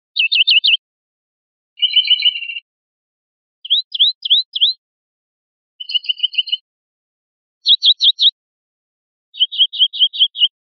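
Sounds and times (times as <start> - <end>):
linnet calling: 0.0 - 0.8, 1.8 - 2.7, 3.6 - 4.8, 7.6 - 8.4, 9.4 - 10.6.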